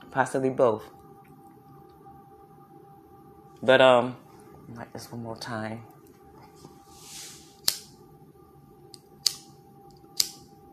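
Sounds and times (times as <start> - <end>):
low steady hum: 0.0 - 10.7
speech: 0.2 - 1.0, 3.6 - 6.0
big lighter being flicked as it runs out: 7.6 - 7.9, 8.9 - 10.4.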